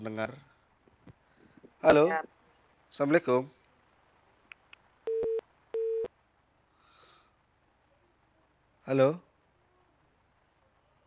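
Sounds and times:
speech: 0.0 - 0.5, 1.8 - 3.6, 8.8 - 9.3
telephone busy tone after a cut-off call: 5.1 - 6.1.

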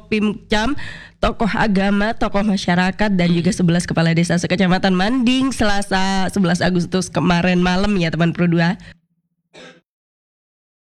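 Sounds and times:
speech: 0.1 - 9.8
loud cough: 9.6 - 9.8.

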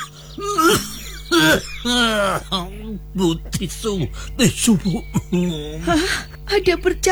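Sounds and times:
man coughing harshly: 0.0 - 6.6
laughter: 0.0 - 7.1
speech: 1.5 - 7.1.

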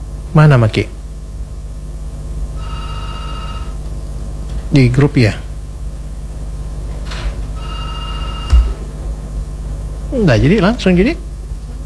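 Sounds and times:
speech: 0.3 - 1.0, 4.7 - 5.4, 10.2 - 11.3
phone ringing with an incoming WhatsApp call: 2.6 - 3.7, 7.6 - 8.8.

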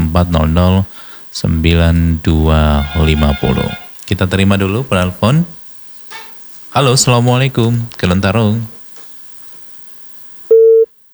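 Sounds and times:
speech: 0.1 - 5.6, 6.8 - 8.8
telephone busy tone after a dropped phone call: 2.8 - 4.0, 10.5 - 11.1.

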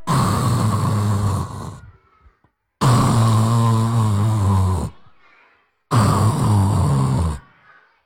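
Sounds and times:
voice imitating loud rasping snoring: 0.0 - 2.0, 2.8 - 5.0, 5.9 - 7.6.

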